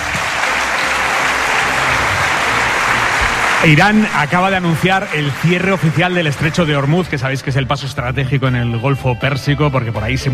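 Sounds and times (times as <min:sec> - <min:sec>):
studio audience applause: 0:00.0 - 0:08.0
speech: 0:03.6 - 0:10.3.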